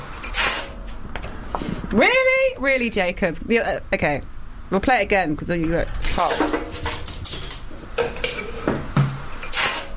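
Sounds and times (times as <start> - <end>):
speech: 1.9 - 6.9
pots and dishes being washed up in a sink: 6.1 - 9.6.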